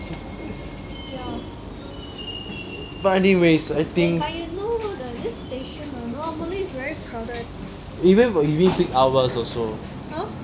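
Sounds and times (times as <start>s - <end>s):
thin high-pitched subway wheel whines: 0.0s - 7.9s
subway train heading to City Hall rumbling on rails: 0.0s - 10.4s
speech: 3.0s - 4.4s, 8.0s - 10.3s.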